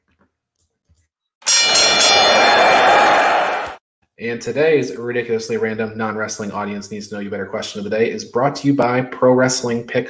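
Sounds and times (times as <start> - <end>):
wrestling ring bell clanging: 1.4 - 3.6
speech: 4.2 - 10.0.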